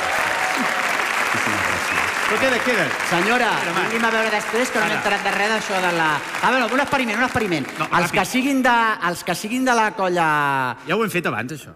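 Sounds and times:
studio audience applause on a radio programme: 0.0 - 8.7
speech: 2.3 - 11.7.

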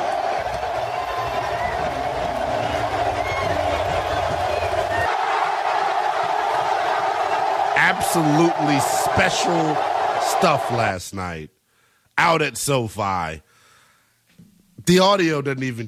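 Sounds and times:
huge stadium crowd roaring: 0.0 - 11.1
speech: 8.0 - 11.6, 12.2 - 13.5, 14.9 - 15.8.

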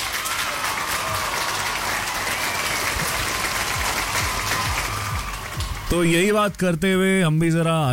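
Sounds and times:
crowd applause: 0.0 - 6.4
speech: 5.9 - 7.9.

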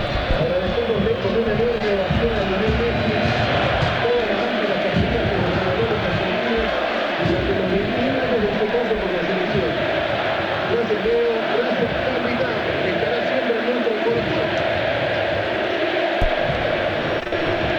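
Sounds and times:
football stadium crowd applauding: 0.0 - 14.0, 15.9 - 17.7
football stadium crowd chanting: 0.0 - 17.7.

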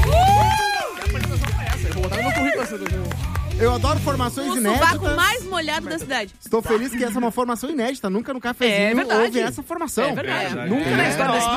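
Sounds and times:
crowd cheering and shouting: 0.0 - 3.6
scattered clapping: 0.0 - 4.3
speech: 3.6 - 11.5.

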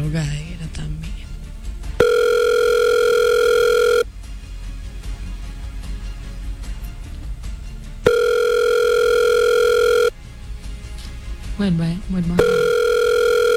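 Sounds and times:
speech: 0.0 - 0.9
electronic telephone ring tones on an outgoing call: 2.0 - 4.1, 8.0 - 10.2, 12.4 - 13.5.

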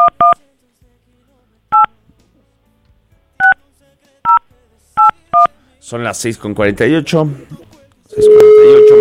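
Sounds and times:
telephone touch tones of a number being dialed: 0.0 - 0.4, 8.2 - 8.9
speech: 5.9 - 7.7.

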